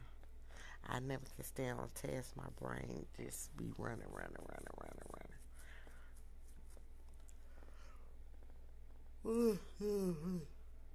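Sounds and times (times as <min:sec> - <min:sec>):
speech: 0:00.8 - 0:05.5, 0:09.2 - 0:10.6
breathy groaning yawn: 0:09.2 - 0:10.5.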